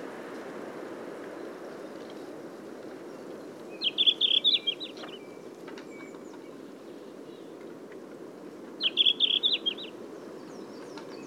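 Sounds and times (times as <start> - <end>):
red-flanked bluetail Tarsiger cyanurus singing: 3.7 - 6.4, 8.8 - 11.2.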